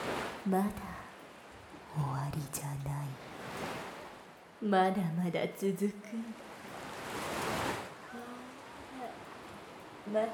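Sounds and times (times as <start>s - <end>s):
soft ocean wave washing in and out: 0.0s - 2.0s, 3.1s - 4.6s, 5.6s - 10.3s
speech: 0.4s - 0.9s, 2.0s - 3.7s, 4.6s - 6.5s, 10.1s - 10.3s
faint murmuring voice: 8.0s - 9.2s.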